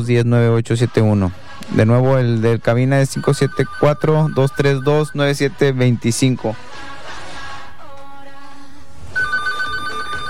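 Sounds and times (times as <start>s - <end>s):
speech: 0.0s - 6.9s
electronic telephone ringtone for an incoming call: 3.1s - 5.4s, 9.2s - 10.2s.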